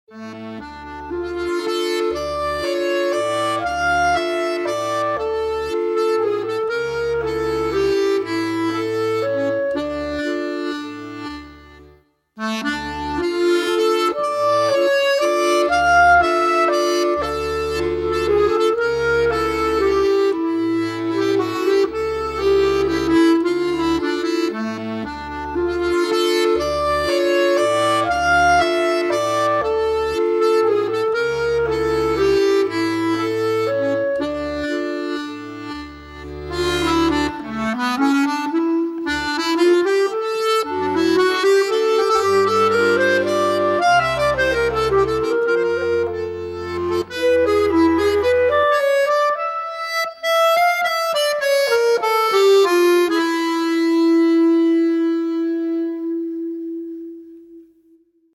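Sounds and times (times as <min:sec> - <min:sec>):
accordion: 0:00.0 - 0:57.8.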